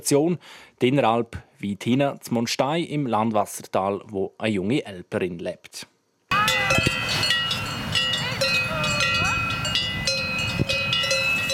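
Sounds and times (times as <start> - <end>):
speech: 0.0 - 5.9
cowbells of cows brought into the barn on the Inneralp alpine pasture: 6.3 - 11.5.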